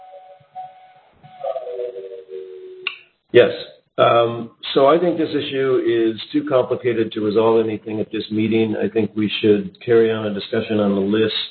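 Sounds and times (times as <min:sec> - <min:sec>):
steady high whistle tone: 0:00.0 - 0:03.0
speech: 0:03.3 - 0:11.4.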